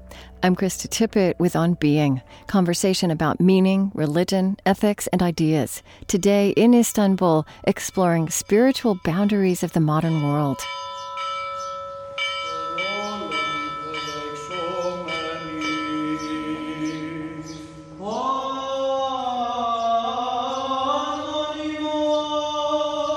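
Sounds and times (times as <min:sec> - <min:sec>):
speech: 0:00.4 - 0:11.0
church bells ringing at a Sunday morning liturgy in a monastery chapel on a small island: 0:06.5 - 0:19.6
chanted voices at a Sunday morning liturgy in a monastery chapel: 0:12.2 - 0:23.1.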